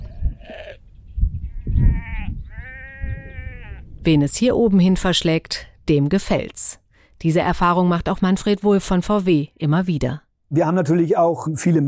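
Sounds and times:
sheep bleating: 0.0s - 0.8s, 1.5s - 3.8s
low rumble of wind or ground noise: 0.0s - 8.5s
speech: 4.0s - 11.8s.

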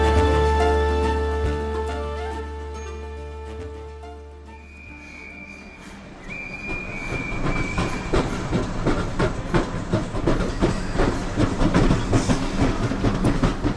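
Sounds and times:
train passing a railway platform in 1856 England: 0.0s - 13.7s
brief high train squeal: 4.6s - 8.1s
train wheels clickety-clack: 5.0s - 13.7s.

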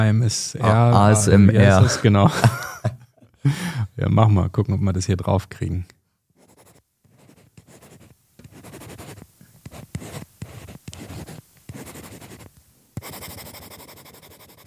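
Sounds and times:
speech: 0.0s - 6.0s
laughter: 0.6s - 3.6s
stylus scratching across a paper-like tablet screen: 6.4s - 14.6s.

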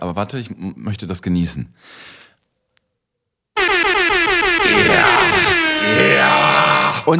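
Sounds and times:
speech: 0.1s - 2.3s
air horn sound effect triggered by a button: 3.6s - 7.1s.

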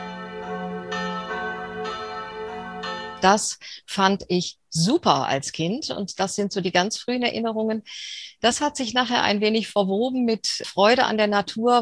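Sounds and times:
large cathedral church bells pealing: 0.0s - 3.3s
speech: 3.2s - 11.8s.

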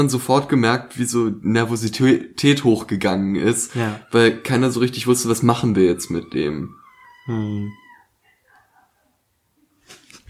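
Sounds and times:
speech: 0.0s - 7.8s
cat meowing: 3.8s - 8.9s.

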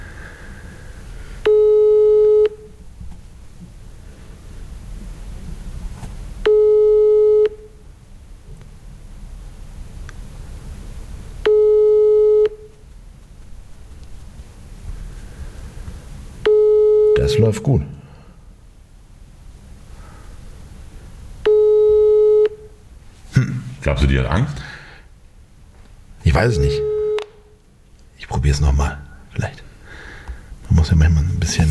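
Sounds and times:
low hiss: 0.0s - 31.7s
telephone busy signal during a call: 1.4s - 2.7s, 6.4s - 7.7s, 11.4s - 12.7s, 16.4s - 17.4s, 21.4s - 22.7s, 26.6s - 27.2s
speech: 17.4s - 18.0s, 23.9s - 24.7s, 26.4s - 26.9s, 28.4s - 29.6s, 30.8s - 31.7s.

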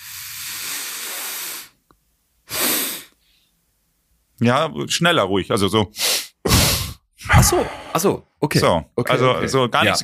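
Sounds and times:
inhaling through a stuffy nose before drinking schnapps: 0.0s - 1.8s, 2.5s - 3.5s, 6.0s - 7.0s
speech: 4.4s - 6.1s, 7.5s - 10.0s.

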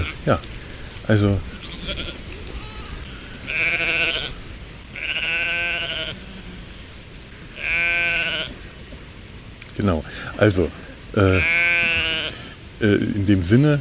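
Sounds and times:
sheep bleating: 0.0s - 0.4s, 1.5s - 6.7s, 7.5s - 8.6s, 11.2s - 12.6s
speech: 0.0s - 2.2s, 9.8s - 11.6s, 12.8s - 13.7s.

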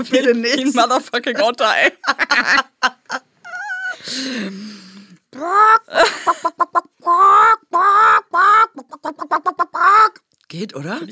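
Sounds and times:
speech: 0.0s - 3.2s, 4.0s - 11.0s
laughter: 1.4s - 4.1s, 5.4s - 6.8s
person imitating a clucking chicken: 3.4s - 4.0s, 5.3s - 10.2s.

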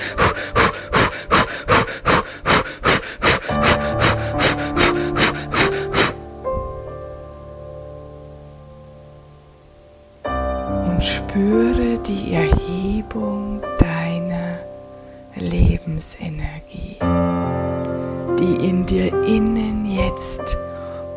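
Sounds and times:
rapid forceful breathing in and out with arms raised: 0.0s - 6.8s
soft sustained music: 0.0s - 21.1s
speech: 18.4s - 20.6s.

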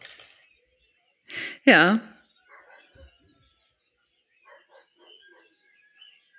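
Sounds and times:
birds chirping: 0.0s - 6.3s
speech: 1.6s - 2.1s
dog barking: 2.5s - 3.1s, 4.4s - 5.6s.

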